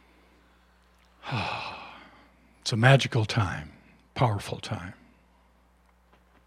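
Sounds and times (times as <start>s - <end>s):
deep breath during a guided breathing pause: 0.0s - 2.6s
speech: 2.7s - 5.0s.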